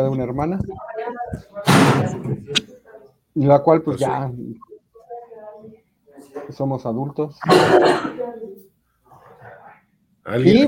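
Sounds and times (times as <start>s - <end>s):
speech: 0.0s - 2.8s, 3.4s - 4.7s, 6.5s - 8.4s, 10.3s - 10.6s
son coughing: 7.4s - 8.2s.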